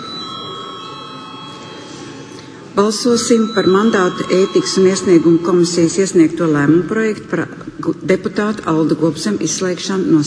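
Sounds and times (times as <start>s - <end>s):
electric bell ringing in a parliament session before a vote: 0.0s - 6.9s
speech: 2.8s - 10.2s.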